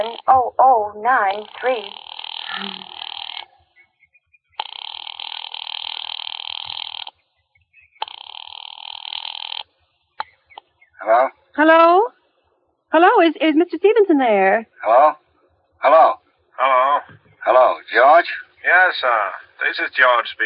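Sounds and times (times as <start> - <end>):
speech: 0.0 - 3.0, 11.0 - 12.1, 12.9 - 15.2, 15.8 - 20.4
tinny buzzing telephone ringing tone through the receiver: 0.0 - 3.6, 4.6 - 7.2, 8.0 - 9.7
warbling voice-like sound: 1.3 - 3.0.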